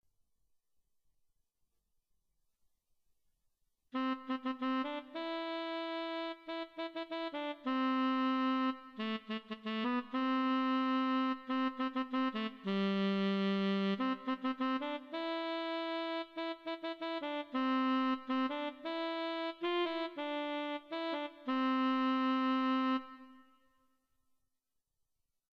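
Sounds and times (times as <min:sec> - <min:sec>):
saxophone melody: 0:04.0 - 0:23.8.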